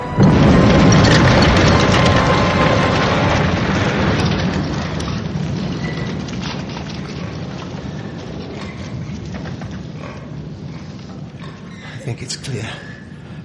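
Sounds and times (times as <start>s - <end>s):
bomb explosion: 0.0s - 10.7s.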